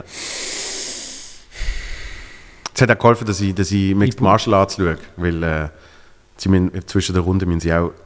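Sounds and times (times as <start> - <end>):
deep breathing through the nose: 0.0 - 2.7
speech: 2.8 - 8.0.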